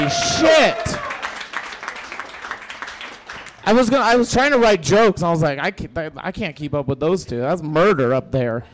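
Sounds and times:
audience applause: 0.0 - 4.0
speech: 0.1 - 1.0, 3.7 - 8.7.

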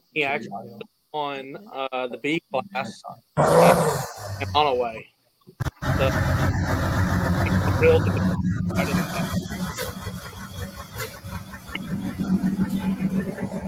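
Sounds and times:
speech: 0.1 - 6.9, 7.8 - 9.5
indistinct voices: 1.4 - 5.0, 5.6 - 13.6
drag racing truck engine roaring with a deep sustained rumble: 5.6 - 13.6.

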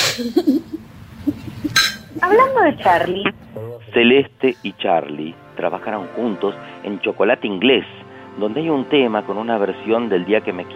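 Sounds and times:
speech: 0.2 - 0.8, 2.2 - 10.7
soft low murmurs: 1.3 - 4.7
glasses clinking together in a toast: 1.7 - 2.2.

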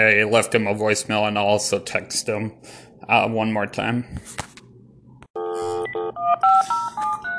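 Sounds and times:
speech: 0.0 - 4.5
touch-tone telephone DTMF dialing beeps: 5.4 - 7.3.

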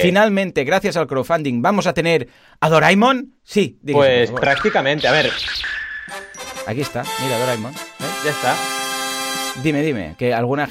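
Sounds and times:
speech: 0.0 - 5.7, 6.7 - 8.7, 9.6 - 10.6
bright cartoon gadget-reveal jingle: 6.0 - 7.6.

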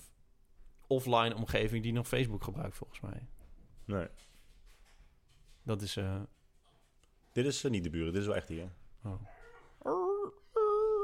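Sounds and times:
speech: 0.9 - 4.3, 5.6 - 6.4, 7.4 - 10.4
dog whimpering inside the house: 9.2 - 11.0.

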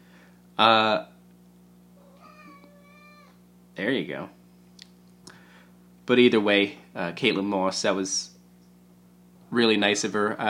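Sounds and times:
faint steady hum: 0.0 - 10.4
speech: 0.6 - 1.1, 3.8 - 4.4, 6.1 - 8.3, 9.5 - 10.4
cat meowing into microphone: 2.0 - 3.4.

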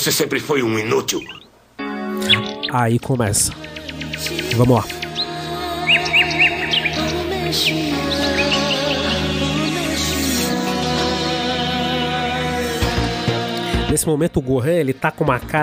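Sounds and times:
speech: 0.0 - 1.4, 2.7 - 5.0, 7.5 - 8.2, 13.9 - 15.6
musical backdrop: 0.7 - 15.6
small white bird chirping: 0.8 - 1.6, 2.2 - 9.3.

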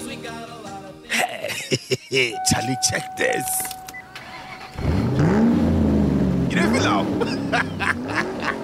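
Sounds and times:
laughter: 1.1 - 2.7, 6.6 - 8.6
speech: 2.1 - 3.8
car engine starting and revving: 4.1 - 8.6.

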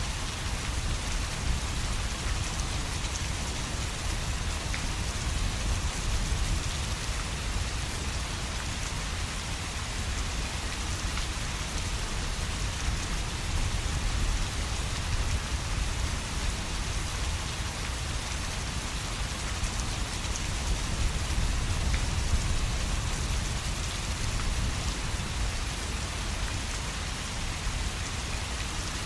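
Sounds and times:
low rumbling wind: 0.0 - 29.0
steady rain striking surfaces: 0.0 - 29.0.

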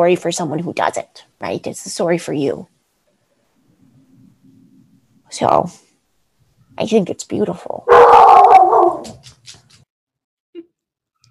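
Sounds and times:
speech: 0.0 - 2.8, 5.3 - 5.8, 6.8 - 8.2
dog howling next door: 7.9 - 9.2.

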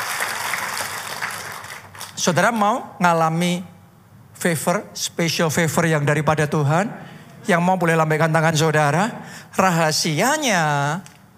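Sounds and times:
crowd applauding: 0.0 - 2.2
speech: 2.2 - 3.7, 4.4 - 11.1.

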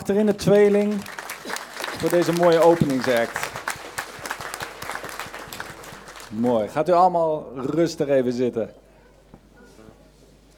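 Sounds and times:
speech: 0.1 - 1.2, 2.0 - 3.5, 6.3 - 8.8
audience applause: 0.2 - 6.7.

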